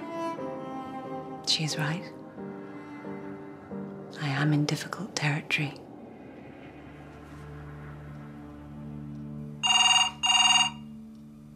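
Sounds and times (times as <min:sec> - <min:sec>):
speech: 0:01.5 - 0:02.2, 0:04.2 - 0:05.8
telephone ringing in bright bursts: 0:09.6 - 0:11.0.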